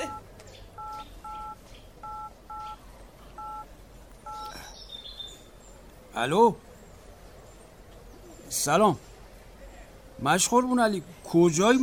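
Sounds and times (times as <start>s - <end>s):
touch-tone keypad beeps of a telephone being dialed: 0.0s - 2.8s, 3.4s - 4.6s
speech: 6.2s - 6.7s, 8.6s - 9.1s, 10.2s - 11.8s.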